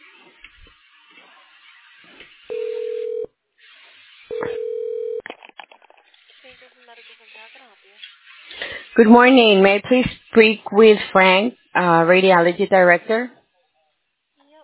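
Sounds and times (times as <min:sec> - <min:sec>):
telephone line tones during a hospital call transfer: 0:02.5 - 0:03.3, 0:04.3 - 0:05.2
speech: 0:09.0 - 0:13.4.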